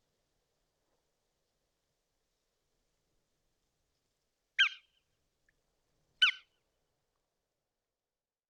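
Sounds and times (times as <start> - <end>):
bar-tailed godwit nasal buzzy call notes: 4.6 - 5.0, 6.2 - 6.5.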